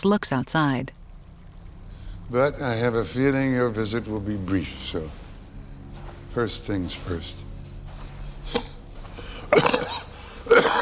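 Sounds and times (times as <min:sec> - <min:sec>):
speech: 0:00.0 - 0:01.0, 0:02.3 - 0:05.2, 0:06.3 - 0:07.4
man coughing into a handkerchief: 0:09.4 - 0:10.8.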